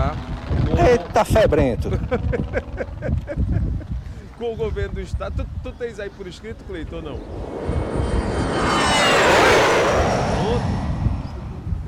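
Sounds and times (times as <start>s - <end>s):
speech: 0.9s - 3.4s, 4.4s - 9.3s
airplane flying overhead: 6.5s - 11.8s.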